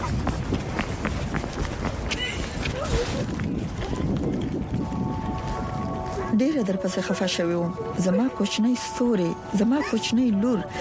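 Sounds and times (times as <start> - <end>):
quick hurried footsteps of two people walking fast: 0.0 - 6.2
steady rushing wind-like noise: 0.0 - 6.4
speech: 6.4 - 10.7.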